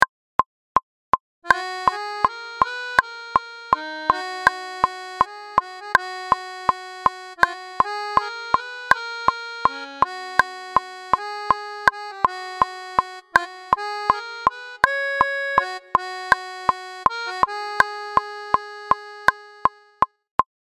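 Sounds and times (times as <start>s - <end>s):
norteño accordion: 1.4s - 20.0s.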